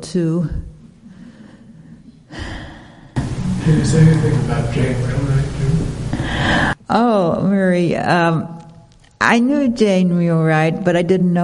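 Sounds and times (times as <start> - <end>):
speech: 0.0 - 0.6, 3.7 - 5.8, 6.4 - 8.6, 9.2 - 11.4
slow deep breathing: 1.0 - 3.3, 6.1 - 6.8.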